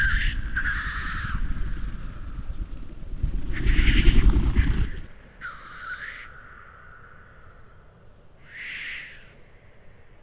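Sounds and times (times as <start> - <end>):
heavy low rumble: 0.0 - 5.3
lekking black grouse giving hissing blows in Sweden: 0.0 - 6.2.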